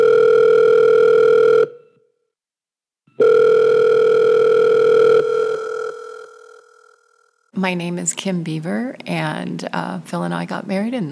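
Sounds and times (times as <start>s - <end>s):
telephone line tone during dialing: 0.0s - 2.1s, 3.2s - 7.2s
speech: 7.6s - 11.0s.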